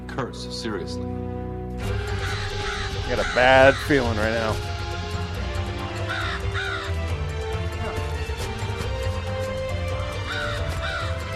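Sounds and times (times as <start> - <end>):
speech: 0.2 - 2.4, 3.1 - 4.7
crow cawing: 1.8 - 8.3, 9.6 - 11.3.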